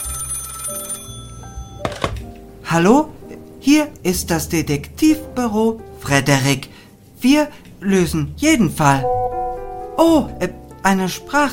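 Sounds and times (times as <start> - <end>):
telephone ringing in a detective office: 0.0 - 2.1
speech: 2.7 - 9.4, 10.0 - 11.5.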